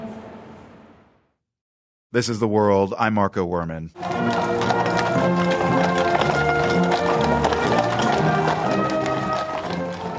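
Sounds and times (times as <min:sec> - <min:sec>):
speech: 0:02.1 - 0:04.4
brass band playing a march: 0:04.0 - 0:10.1
crowd of spectators cheering and murmuring: 0:04.0 - 0:10.1
horse hooves clopping: 0:04.0 - 0:10.1.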